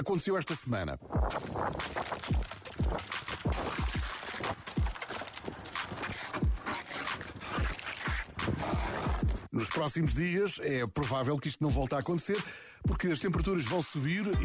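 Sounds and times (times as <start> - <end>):
speech: 0.0 - 2.4, 9.6 - 14.4
scraping ice off a car windshield: 1.1 - 9.5.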